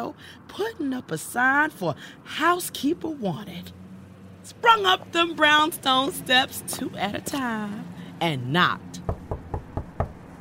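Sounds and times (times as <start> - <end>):
speech: 0.0 - 3.8, 4.4 - 9.1
knocking on the door of a brownstone house: 9.1 - 10.3.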